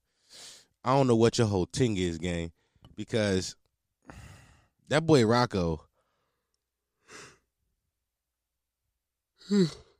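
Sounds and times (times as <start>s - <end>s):
speech: 0.8s - 4.2s, 4.9s - 5.9s, 9.5s - 9.8s
person yawning: 9.4s - 9.9s.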